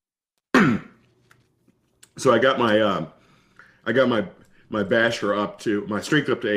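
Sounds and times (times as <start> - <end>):
person coughing or clearing throat: 0.5 - 1.0
speech: 0.6 - 0.9, 2.2 - 3.2, 3.8 - 6.5.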